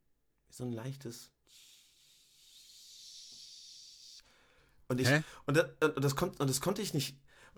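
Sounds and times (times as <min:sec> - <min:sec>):
speech: 0:00.6 - 0:01.7, 0:04.9 - 0:07.5
voice imitating a steady recording hiss: 0:01.2 - 0:04.3.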